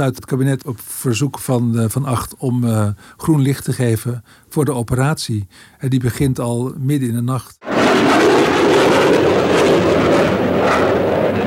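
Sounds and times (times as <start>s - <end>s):
speech: 0.0s - 8.6s
fighter jets flying low overhead: 7.6s - 11.4s.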